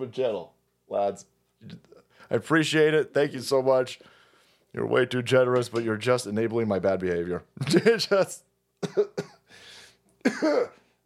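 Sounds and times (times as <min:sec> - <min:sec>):
speech: 0:00.0 - 0:09.4, 0:10.2 - 0:10.8
breathy exhale: 0:04.0 - 0:04.7, 0:09.5 - 0:10.0
person coughing: 0:08.8 - 0:09.5, 0:10.2 - 0:10.9
rough throat clearing with a raspy voiced edge: 0:08.8 - 0:09.5, 0:10.2 - 0:10.9.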